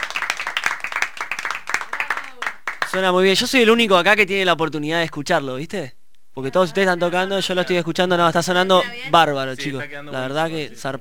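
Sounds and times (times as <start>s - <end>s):
audience applause: 0.0s - 3.1s
speech: 2.9s - 10.9s.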